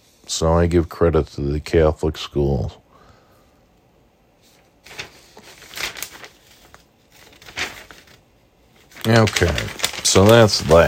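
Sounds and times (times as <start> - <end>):
speech: 0.3 - 2.8, 9.1 - 10.8
paper being crumpled: 4.5 - 10.8.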